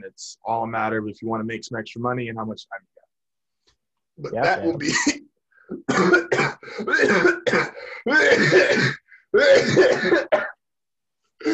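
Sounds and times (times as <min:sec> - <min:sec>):
speech: 0:00.1 - 0:02.9, 0:04.2 - 0:10.5
person coughing harshly into microphone: 0:04.4 - 0:10.6.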